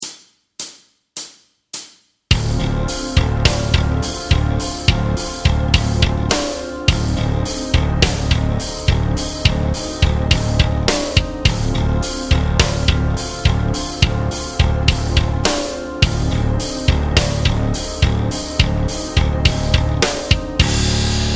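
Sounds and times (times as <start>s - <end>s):
Dorian b2 backing track music: 2.3s - 21.3s.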